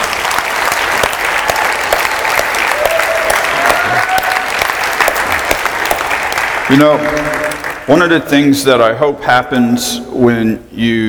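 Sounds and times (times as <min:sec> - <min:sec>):
large crowd clapping in praise: 0:00.0 - 0:08.1
speech: 0:06.7 - 0:11.0.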